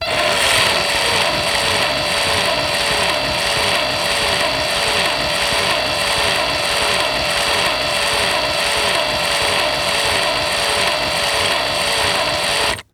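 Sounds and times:
industry power drill low spin in opposite direction: 0:00.0 - 0:12.9.

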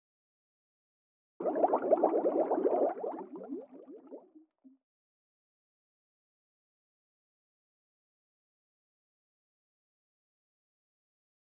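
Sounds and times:
underwater water splash: 0:01.4 - 0:04.3
gurgling bubbles underwater: 0:01.4 - 0:04.4.

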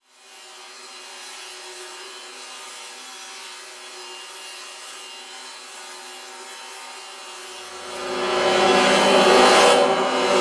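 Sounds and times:
dark metallic transition stab: 0:07.6 - 0:10.4.

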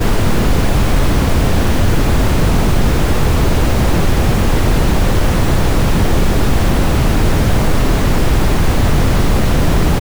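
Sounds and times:
brown noise: 0:00.0 - 0:09.9.

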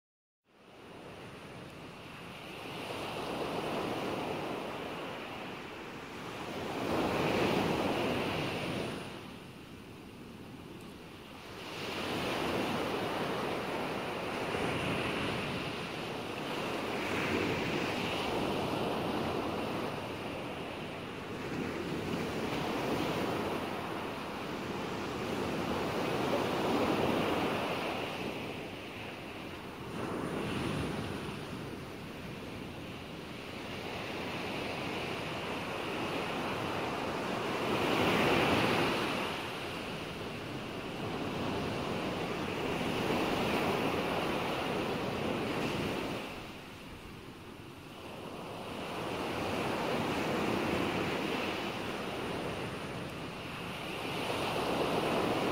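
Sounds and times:
calming sea ocean waves: 0:00.6 - 0:55.5.

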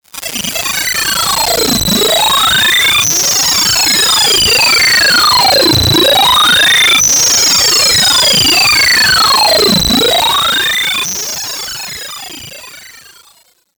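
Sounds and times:
computer data transmission sounds: 0:01.1 - 0:12.1.

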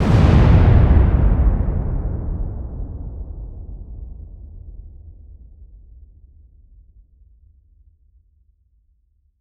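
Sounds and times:
large deep dynamite demolition explosions: 0:00.0 - 0:05.2.

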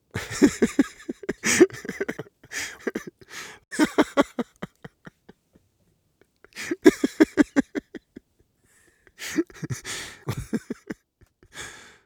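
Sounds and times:
male joyful giggly laughter: 0:00.2 - 0:05.4, 0:06.5 - 0:08.2, 0:09.2 - 0:11.5.

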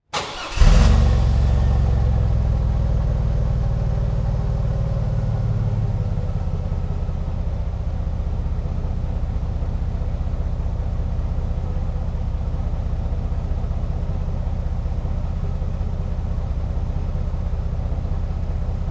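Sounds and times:
Chevrolet Avalanche engine starting at the exhaust: 0:00.1 - 0:06.6
Chevrolet Avalanche engine idling at the exhaust: 0:00.1 - 0:18.9.

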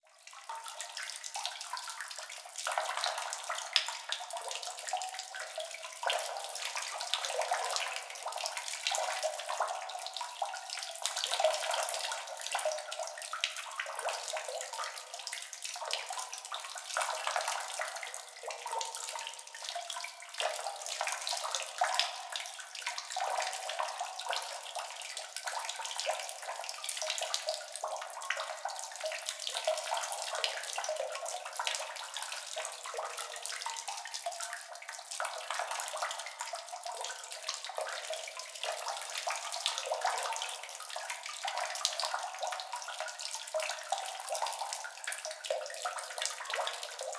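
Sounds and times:
liquid water drips ambience: 0:00.1 - 0:47.1.

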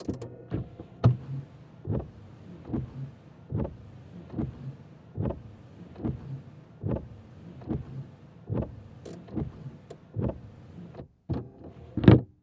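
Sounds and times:
car windshield wipers heard from car interior: 0:00.0 - 0:12.2.

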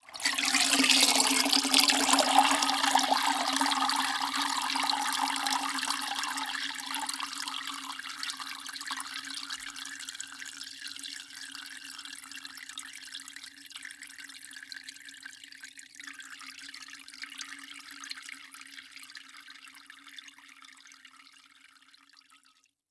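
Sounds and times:
water dripping into mop bucket: 0:00.0 - 0:11.2.

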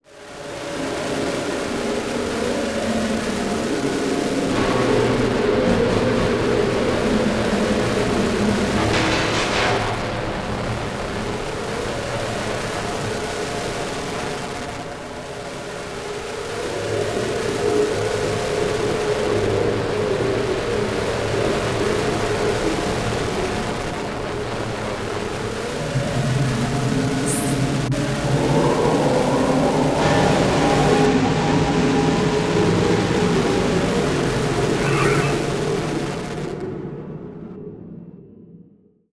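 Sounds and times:
distortion random static pulses: 0:00.2 - 0:31.1, 0:32.1 - 0:36.8.

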